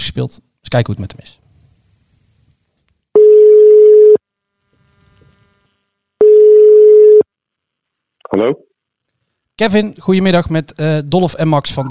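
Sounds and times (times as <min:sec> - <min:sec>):
speech: 0:00.1 - 0:01.4, 0:08.4 - 0:08.7, 0:09.6 - 0:11.8
telephone ringback tone beeps while placing a call: 0:03.2 - 0:04.2, 0:06.2 - 0:07.2.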